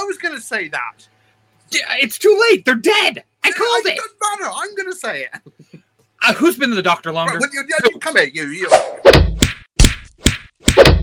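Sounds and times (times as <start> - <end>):
speech: 0.1 - 9.2
hand slapping a person: 8.7 - 11.0.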